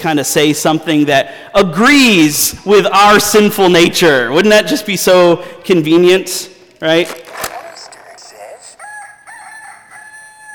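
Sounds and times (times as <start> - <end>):
speech: 0.0 - 7.2
rooster crowing cock-a-doodle-doo: 8.8 - 10.5.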